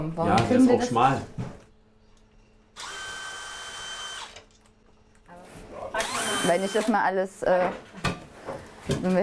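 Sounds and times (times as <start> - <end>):
speech: 0.0 - 1.4, 6.4 - 7.9, 8.8 - 9.2
power drill unscrewing fittings: 2.8 - 4.5, 6.0 - 7.0.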